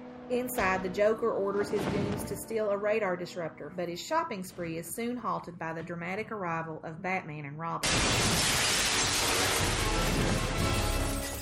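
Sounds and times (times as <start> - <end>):
speech: 0.3 - 8.6
glass window shattering as two people burst through: 7.8 - 11.4
bright tinkling glass fragments raining down: 8.0 - 11.4.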